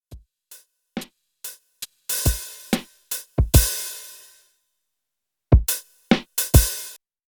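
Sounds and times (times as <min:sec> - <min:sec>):
lofi drum beat: 0:01.0 - 0:04.3, 0:05.5 - 0:07.0.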